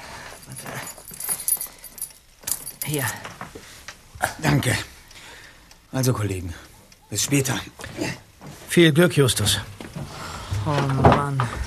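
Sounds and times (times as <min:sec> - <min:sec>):
house keys on a ring jangling as they are handed over: 0:00.2 - 0:03.2
speech: 0:02.9 - 0:03.3, 0:04.2 - 0:04.9, 0:05.9 - 0:09.7, 0:10.6 - 0:11.6.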